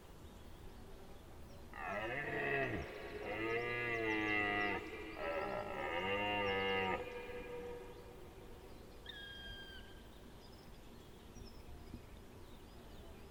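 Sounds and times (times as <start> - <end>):
deer uttering mooing calls: 1.8 - 9.9.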